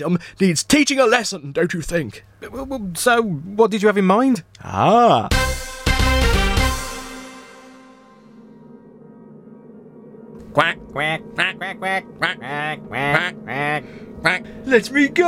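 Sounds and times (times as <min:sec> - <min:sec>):
speech: 0:00.0 - 0:05.7, 0:10.6 - 0:15.2
ducks quacking: 0:10.5 - 0:14.6.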